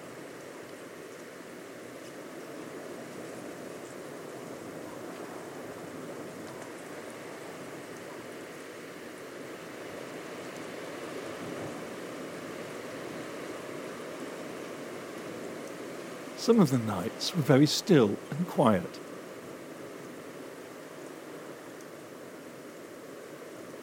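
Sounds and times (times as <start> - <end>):
surf on coastal dunes at night: 0.0 - 23.8
speech: 16.4 - 19.0
breeze on coastal dunes at night: 16.4 - 19.1.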